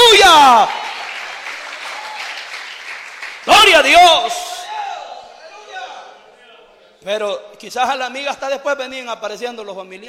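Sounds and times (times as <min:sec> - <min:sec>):
congregation applauding at a Spanish-language church service: 0:00.0 - 0:04.7
speech: 0:03.8 - 0:04.5, 0:07.0 - 0:10.0.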